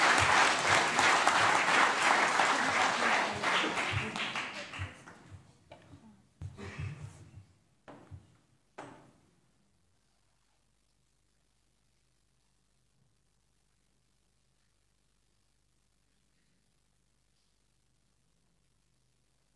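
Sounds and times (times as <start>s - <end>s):
audience applause for a child pledging to serve on a municipal children's council: 0.0s - 5.3s.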